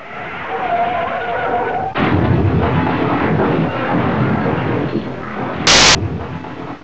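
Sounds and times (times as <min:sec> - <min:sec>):
car crash: 0:00.3 - 0:06.8.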